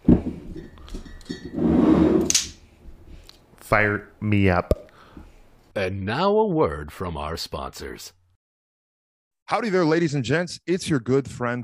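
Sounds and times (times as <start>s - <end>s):
glasses clinking together: 0.4s - 1.6s
speech: 3.7s - 4.8s, 5.8s - 8.2s, 9.5s - 11.6s.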